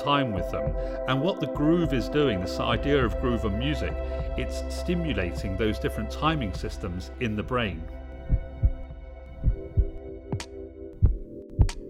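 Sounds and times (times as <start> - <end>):
speech: 0.0 - 8.0
human heartbeat: 0.5 - 1.0, 8.2 - 11.8.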